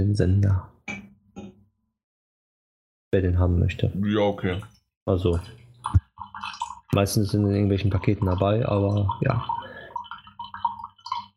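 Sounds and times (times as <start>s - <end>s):
speech: 0.0s - 0.7s, 3.1s - 9.6s
tea trickling and dripping as last drops are squeezed out: 4.4s - 11.3s.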